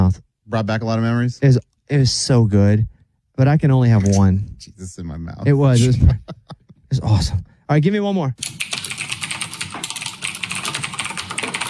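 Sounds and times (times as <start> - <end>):
speech: 0.1 - 8.6
laughter: 5.4 - 7.0
typing on a mechanical keyboard: 8.4 - 11.6.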